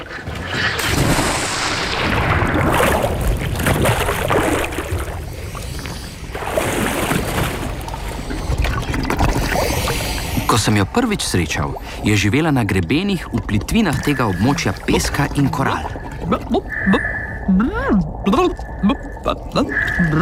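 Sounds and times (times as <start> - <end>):
continuous loud rush of churning bubbling sea water: 0.0 - 20.1
snorkeler jumping into the Caribbean Sea off Martinique: 0.6 - 5.2, 6.4 - 7.8
speech: 10.6 - 20.1.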